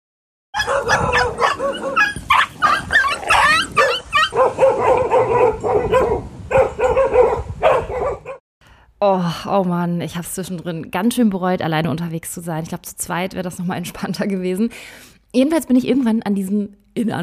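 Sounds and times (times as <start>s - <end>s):
many dogs barking and yipping: 0.6s - 8.4s
speech: 0.8s - 1.3s, 9.0s - 17.2s.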